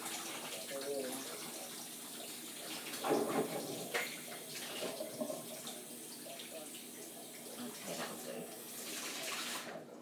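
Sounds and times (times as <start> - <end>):
hot water running from a tap: 0.0 - 9.8.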